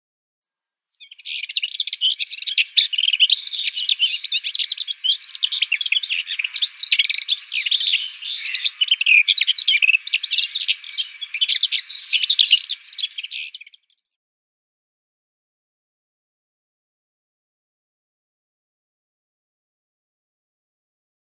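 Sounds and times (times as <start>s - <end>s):
Lesser Whitethroat subsong: 1.0s - 13.8s.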